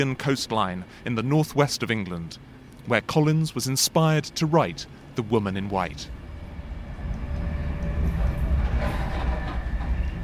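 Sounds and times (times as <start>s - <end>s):
speech: 0.0s - 6.2s
express train from London Euston to Carlisle rumbling along rails: 5.8s - 10.2s.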